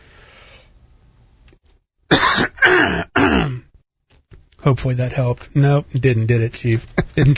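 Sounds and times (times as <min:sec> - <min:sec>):
harsh raspy throat clearing: 0:02.1 - 0:03.7
speech: 0:04.6 - 0:07.3.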